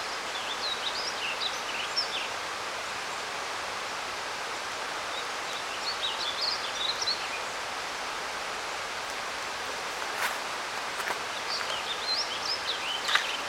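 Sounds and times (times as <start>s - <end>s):
songbird singing in the canopy: 0.0s - 2.4s, 5.0s - 7.8s, 9.0s - 13.4s
noisy river rushing: 0.0s - 13.4s.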